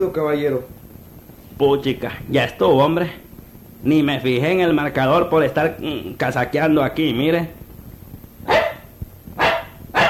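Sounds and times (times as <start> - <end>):
speech: 0.0 - 0.8, 1.6 - 3.2, 3.8 - 7.6
dog barking in the back seat of a car: 8.4 - 10.0.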